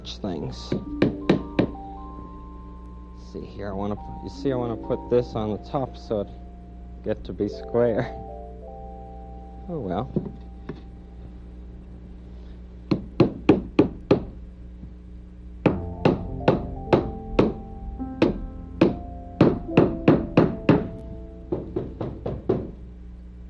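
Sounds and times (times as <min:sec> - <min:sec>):
speech: 0:00.2 - 0:01.1, 0:03.3 - 0:06.4, 0:07.0 - 0:08.3, 0:09.7 - 0:10.8
hammer pounding on wood: 0:00.7 - 0:01.8, 0:12.9 - 0:14.4, 0:15.6 - 0:17.6, 0:18.2 - 0:22.8.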